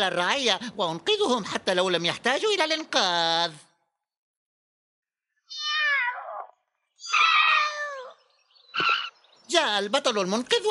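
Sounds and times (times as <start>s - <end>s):
speech: 0.0s - 3.7s, 9.5s - 10.6s
cat meowing: 5.5s - 8.2s.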